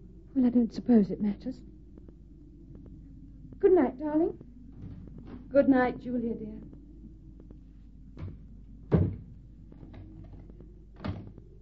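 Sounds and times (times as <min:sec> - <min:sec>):
speech: 0:00.4 - 0:01.8, 0:03.6 - 0:04.5, 0:05.5 - 0:06.7
door pushed shut with a solid thunk: 0:08.2 - 0:09.3
soft knocks: 0:08.2 - 0:10.4.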